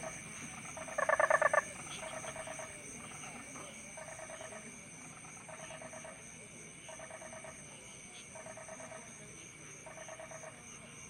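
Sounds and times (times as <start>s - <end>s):
fainter trills from other toads: 0.0s - 11.0s.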